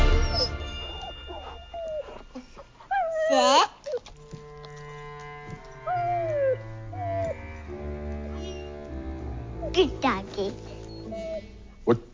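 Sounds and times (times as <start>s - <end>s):
dog whimpering: 0.1s - 4.4s, 5.7s - 7.4s, 10.7s - 11.8s.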